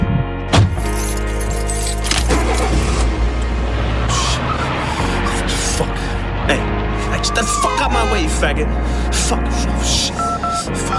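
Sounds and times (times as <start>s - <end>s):
car engine rumbling: 0.1s - 10.8s
keys jangling and rattling: 0.8s - 2.8s
speech: 8.4s - 10.1s.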